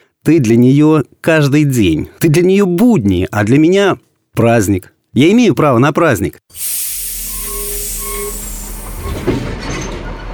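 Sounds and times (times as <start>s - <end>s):
speech: 0.2s - 7.0s
starting train hissing: 6.5s - 9.5s
faint squealing metal tones of a starting train: 6.6s - 9.5s.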